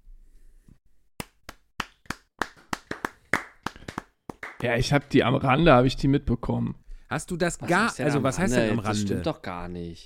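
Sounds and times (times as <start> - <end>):
hand clapping applause: 1.2 - 5.2
speech: 4.6 - 10.0.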